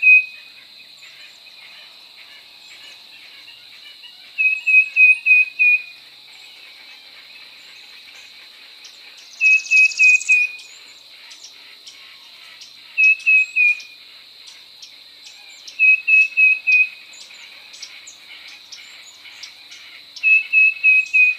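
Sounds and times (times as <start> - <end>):
tufted titmouse Baeolophus bicolor singing whistled phrases: 0.0 - 0.4, 4.4 - 5.9, 9.3 - 10.7, 13.0 - 13.9, 15.7 - 17.0, 20.2 - 21.3
shrill insect hum: 0.0 - 21.3.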